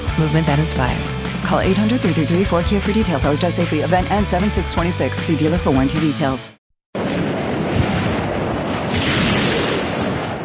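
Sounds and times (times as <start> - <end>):
speech: 0.2 - 6.6
rolling thunder in deep rumbles: 7.0 - 10.4
wind in a thunderstorm: 7.0 - 10.4.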